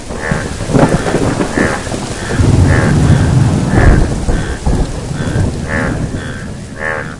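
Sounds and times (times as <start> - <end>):
deep thunder rumbling: 0.0 - 7.1
heavy rain: 0.0 - 7.1
rhythmic repeating croaking call: 1.5 - 4.5, 5.2 - 7.1.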